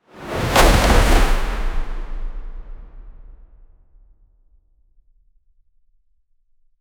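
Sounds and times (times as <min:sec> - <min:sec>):
wooden object thrown fast: 0:00.2 - 0:03.3.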